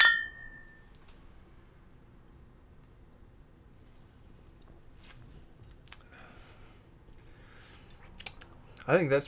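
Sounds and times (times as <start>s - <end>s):
pumpkin-flavoured fall beer bottles clinking in a toast: 0.0s - 0.8s.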